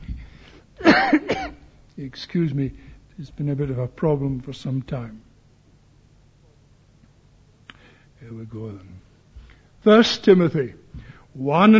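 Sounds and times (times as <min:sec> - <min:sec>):
harsh throaty cough: 0:00.8 - 0:01.6
speech: 0:01.0 - 0:01.3, 0:02.0 - 0:05.3, 0:08.2 - 0:09.0, 0:09.8 - 0:11.7.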